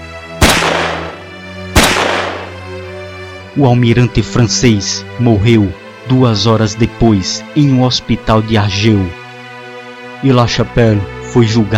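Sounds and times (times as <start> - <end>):
pistol shots in an assassination attempt on a French admiral: 0.4 - 2.7
speech: 3.6 - 9.2, 10.2 - 11.7.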